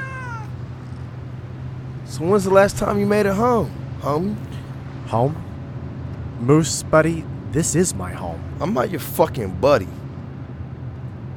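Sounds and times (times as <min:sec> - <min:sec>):
male cat meowing: 0:00.0 - 0:01.0
speech: 0:02.1 - 0:04.5, 0:05.1 - 0:05.5, 0:06.4 - 0:10.0.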